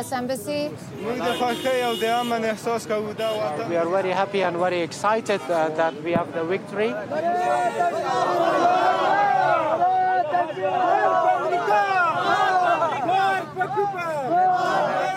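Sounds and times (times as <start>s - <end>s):
speech: 0.0s - 11.8s
large crowd chanting loudly: 7.0s - 15.1s.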